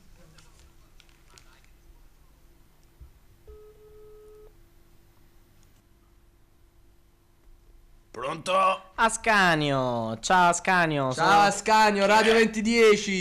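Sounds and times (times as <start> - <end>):
soft hiss: 0.0 - 13.1
telephone busy signal on an engaged line: 3.5 - 4.5
speech: 8.3 - 13.1.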